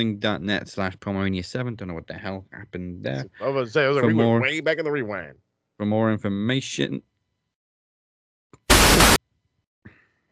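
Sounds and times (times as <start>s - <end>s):
speech: 0.0s - 7.1s
harsh radio static burst: 8.6s - 9.2s.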